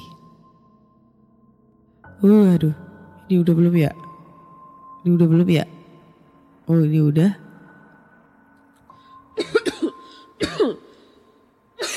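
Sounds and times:
speech: 2.2 - 4.0, 5.0 - 5.8, 6.7 - 7.4
person coughing: 9.4 - 11.1, 11.8 - 11.9.

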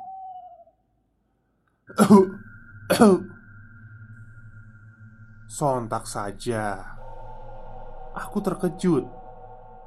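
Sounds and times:
person coughing: 1.9 - 3.0
faint tone: 1.9 - 9.8
speech: 2.0 - 3.3, 5.6 - 7.0, 8.2 - 9.2.

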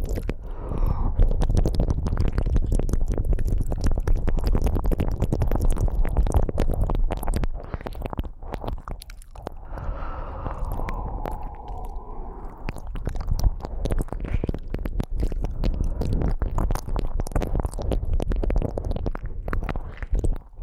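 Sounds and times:
tongue clicks: 0.0 - 20.6
wet ear licking smacks and squishes: 0.0 - 20.6
soft breathy exhale: 0.4 - 1.3, 9.6 - 12.8.

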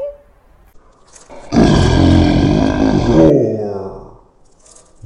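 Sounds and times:
voice imitating a lion's roar: 1.3 - 4.2.

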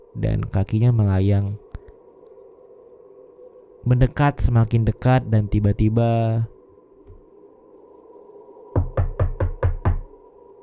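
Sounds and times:
speech: 0.2 - 1.6, 3.8 - 6.5
firm knocks on a bedroom door: 8.8 - 10.1.

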